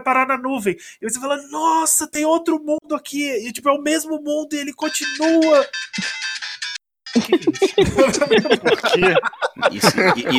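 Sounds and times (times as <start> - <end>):
speech: 0.0 - 6.4, 7.3 - 10.3
bright electronic mobile phone ringtone music: 4.8 - 8.5
people laughing softly: 7.2 - 10.3.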